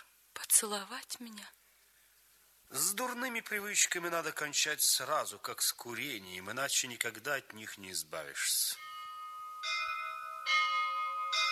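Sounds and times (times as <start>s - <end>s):
speech: 0.6s - 1.6s, 2.7s - 8.8s
church bells ringing: 8.6s - 11.5s.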